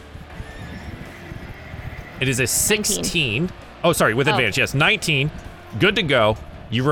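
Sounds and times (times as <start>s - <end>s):
horse whinnying: 0.5s - 3.4s
speech: 2.2s - 6.9s.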